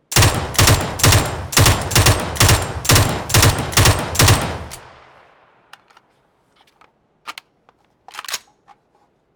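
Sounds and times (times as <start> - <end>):
Mk47 Mutant burst fire: 0.0 - 5.1.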